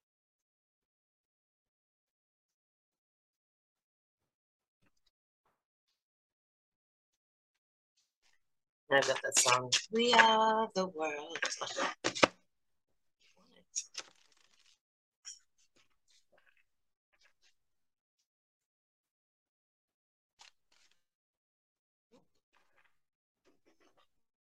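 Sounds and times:
speech: 8.9 - 12.3
tarot cards shuffling: 11.3 - 12.3, 13.8 - 14.8.

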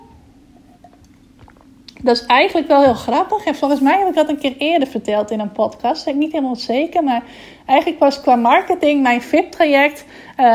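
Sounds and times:
faint steady hum: 0.0 - 10.5
person swallowing water: 0.1 - 2.0
person sipping water with wet mouth sounds: 0.6 - 2.0
speech: 2.0 - 10.5.

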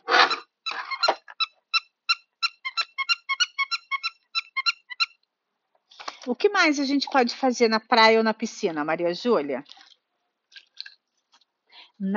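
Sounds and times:
little toy book electronic squeaking: 0.1 - 5.2
speech: 6.3 - 9.8, 12.0 - 12.1.

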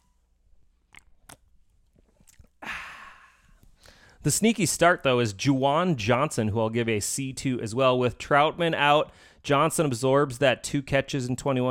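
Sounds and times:
person sipping a drink: 0.6 - 4.2
breathy exhale after swallowing: 2.6 - 4.2
speech: 4.2 - 11.6.

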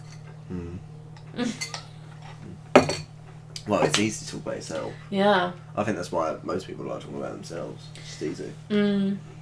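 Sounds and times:
speech: 0.5 - 1.8, 3.7 - 9.4
glasses clinking in a toast: 1.6 - 3.2.

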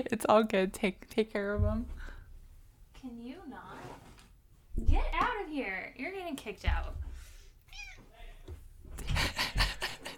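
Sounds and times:
speech: 0.0 - 2.1, 4.8 - 7.0
cat meowing into microphone: 7.7 - 8.1
laughter: 9.0 - 10.1.

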